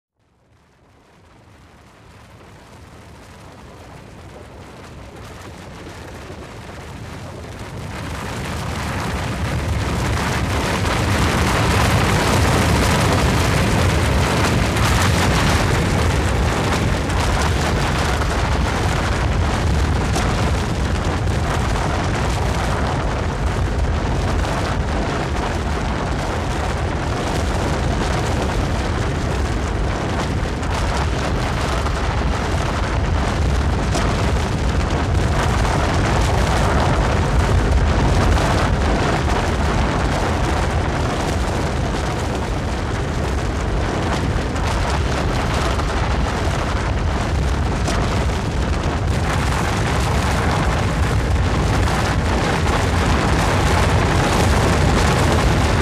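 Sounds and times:
snow avalanche: 0:05.8 - 0:55.8.

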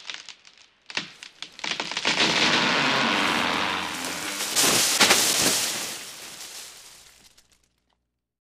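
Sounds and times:
wood crackling: 0:00.9 - 0:07.6
wood falling: 0:01.5 - 0:07.4.

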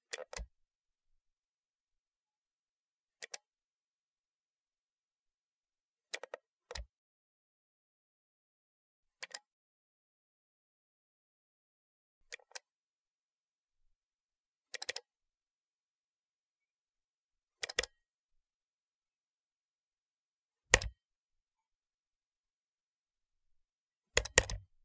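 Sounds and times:
computer mouse click: 0:03.2 - 0:03.5, 0:09.2 - 0:09.5, 0:12.3 - 0:12.7, 0:14.7 - 0:15.1, 0:17.6 - 0:18.0, 0:20.7 - 0:21.0, 0:24.2 - 0:24.7.

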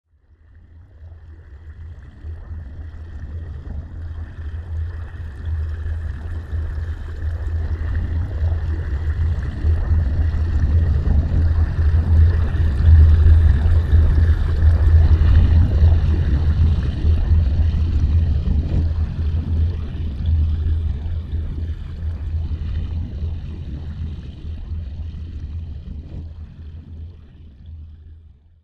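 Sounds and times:
submarine sailing underwater: 0:00.2 - 0:28.5.

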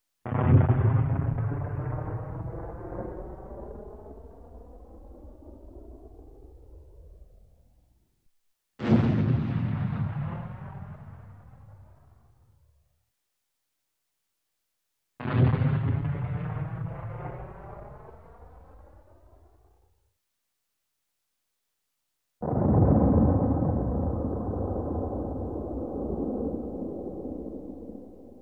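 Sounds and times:
distant explosion: 0:00.3 - 0:03.8, 0:08.8 - 0:12.4, 0:15.2 - 0:19.1, 0:22.4 - 0:28.3.

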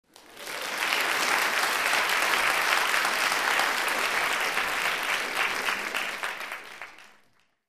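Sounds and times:
applause in the theater: 0:00.0 - 0:07.6.

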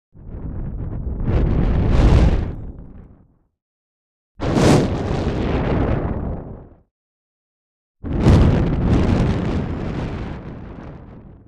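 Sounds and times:
fire flame in the wind: 0:00.2 - 0:03.5, 0:04.4 - 0:06.9, 0:08.0 - 0:11.4.

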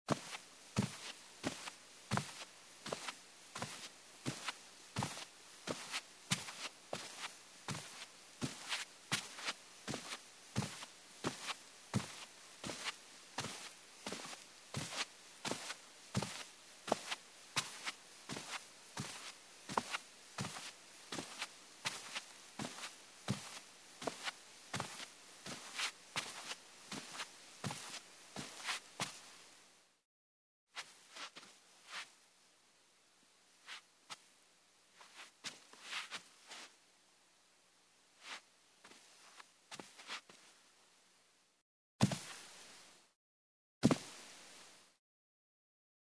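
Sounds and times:
barefoot steps on carpeted wooden floor: 0:00.1 - 0:29.3, 0:35.0 - 0:36.8, 0:38.2 - 0:40.5, 0:42.0 - 0:42.5, 0:43.8 - 0:44.2.

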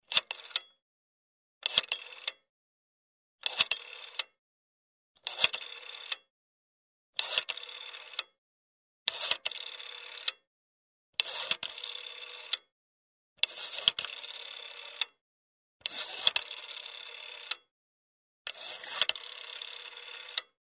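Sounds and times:
number dialled on a rotary telephone: 0:00.1 - 0:00.6, 0:01.6 - 0:02.3, 0:03.4 - 0:04.2, 0:05.2 - 0:06.2, 0:07.2 - 0:08.2, 0:09.1 - 0:10.4, 0:11.2 - 0:12.6, 0:13.4 - 0:15.2, 0:15.8 - 0:17.7, 0:18.5 - 0:20.6.

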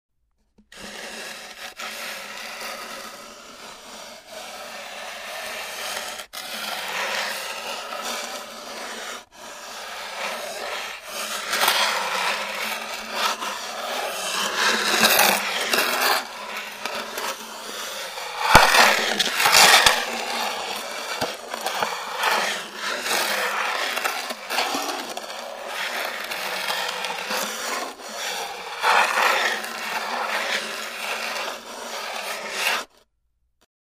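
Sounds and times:
wooden object dragged across the floor: 0:00.6 - 0:33.0.

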